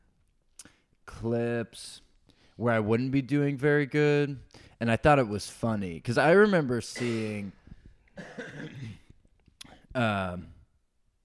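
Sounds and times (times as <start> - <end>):
speech: 1.2 - 2.0, 2.6 - 7.6, 10.0 - 10.6
harsh raspy cough: 6.9 - 7.6, 8.2 - 9.8.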